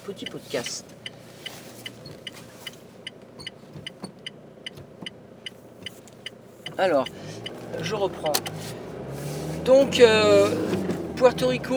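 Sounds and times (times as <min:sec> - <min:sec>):
speech: 0:00.0 - 0:01.1, 0:06.8 - 0:08.8, 0:09.6 - 0:11.7
light regular ticking: 0:00.0 - 0:08.6
car engine hum inside a moving car: 0:00.0 - 0:11.7
road rumble inside a moving car: 0:00.0 - 0:11.7.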